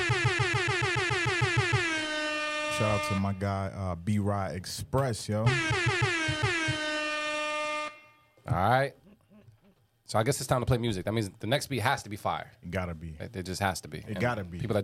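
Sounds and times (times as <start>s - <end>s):
brassy air horn blasts sounded for a raid: 0.0s - 3.6s, 5.4s - 8.4s
speech: 2.8s - 6.9s, 8.5s - 9.0s, 10.1s - 14.8s.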